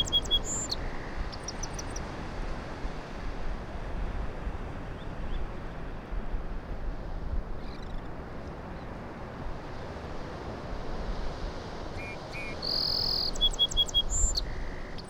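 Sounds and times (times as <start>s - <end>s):
Song Sparrow Melospiza melodia singing: 0.0s - 2.1s, 12.0s - 15.0s
surf crashing on the shore: 0.0s - 15.0s.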